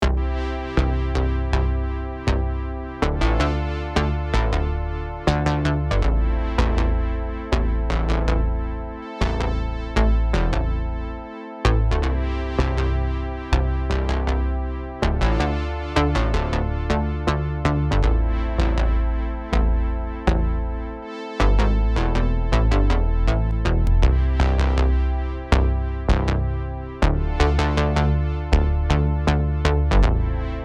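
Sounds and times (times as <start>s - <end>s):
bass with chorus effect: 0.0s - 30.6s.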